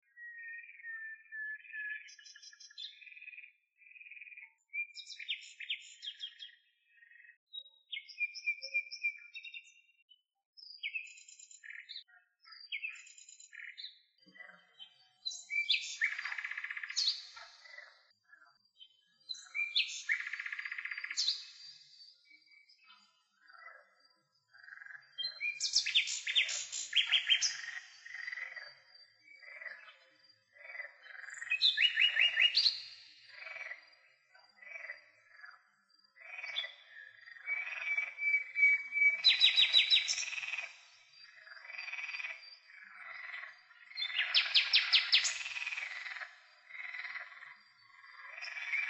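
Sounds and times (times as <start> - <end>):
frogs: 0.0 - 10.2, 10.8 - 48.8
birds: 0.0 - 48.8.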